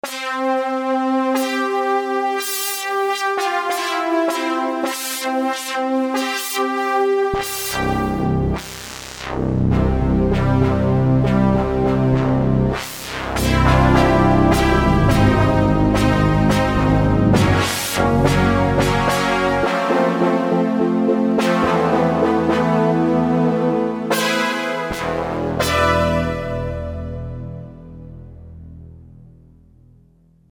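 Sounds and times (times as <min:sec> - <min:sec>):
Bendy GX-One and Roland JD-990 synthesizer: 0:00.0 - 0:30.4.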